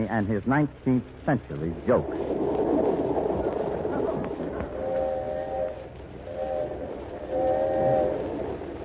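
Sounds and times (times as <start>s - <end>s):
speech: 0.0s - 2.5s
passenger train rumbling along the rails nearing New York: 0.0s - 8.8s
sustained passenger train horn blasts: 4.8s - 8.2s.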